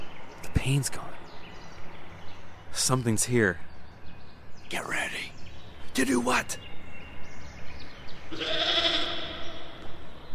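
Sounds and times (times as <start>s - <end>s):
speech: 0.7s - 1.2s, 2.8s - 3.7s, 4.7s - 5.2s, 6.0s - 6.7s, 8.3s - 8.7s
goat bleating: 8.3s - 9.6s.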